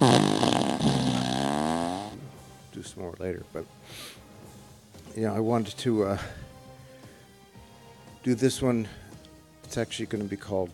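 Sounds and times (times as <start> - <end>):
fart machine blast: 0.0 - 2.2
speech: 2.9 - 4.2, 5.2 - 6.4, 8.2 - 9.0, 9.7 - 10.7.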